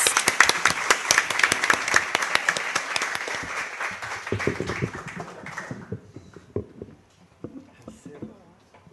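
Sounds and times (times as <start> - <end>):
audience applause welcoming a guest singer-songwriter: 0.0 - 6.6
speech: 4.3 - 5.2.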